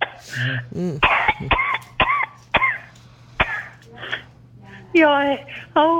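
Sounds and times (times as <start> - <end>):
person coughing harshly: 0.1 - 3.8
speech: 0.4 - 2.0, 4.9 - 5.9
strained throaty vocal sounds: 0.6 - 1.6.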